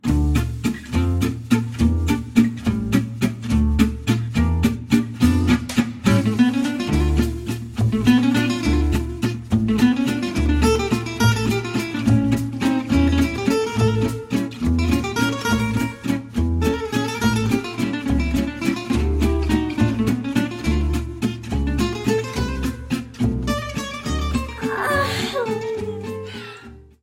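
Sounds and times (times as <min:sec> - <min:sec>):
Spanish guitar: 0:00.0 - 0:27.0.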